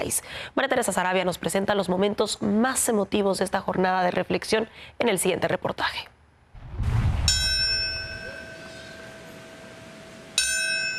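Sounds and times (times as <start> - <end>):
speech: 0.0 - 6.1
faint ambience: 0.0 - 10.9
deep memorial bell ringing at Ground Zero in New York: 7.2 - 9.6.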